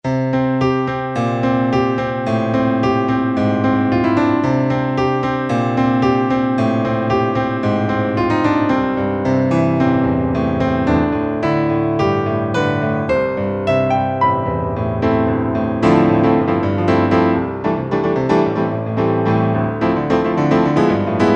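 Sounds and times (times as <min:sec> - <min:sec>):
Korg T3 synthesizer Piano2 16' preset: 0:00.1 - 0:21.3.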